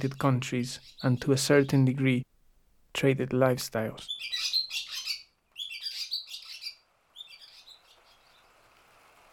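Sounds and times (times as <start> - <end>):
speech: 0.0 - 2.3, 2.9 - 4.6
barn swallow chicks begging while being fed: 4.1 - 8.2
rain: 6.8 - 9.3.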